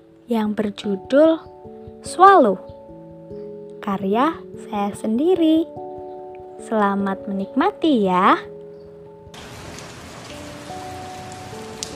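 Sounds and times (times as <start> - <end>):
speech: 0.3 - 2.7, 3.9 - 5.8, 6.6 - 8.5
light rain pattering: 9.3 - 11.9.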